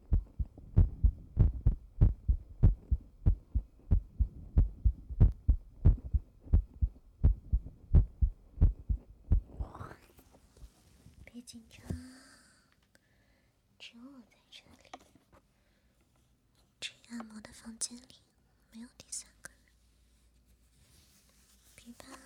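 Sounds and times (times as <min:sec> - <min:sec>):
rapid heartbeat in a massage room: 0:00.0 - 0:09.7
speech: 0:17.6 - 0:19.3.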